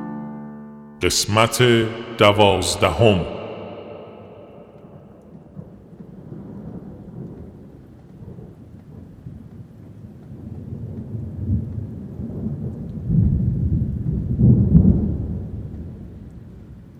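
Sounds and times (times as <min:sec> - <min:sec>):
speech: 0:01.0 - 0:03.4
steady rain: 0:05.6 - 0:16.9.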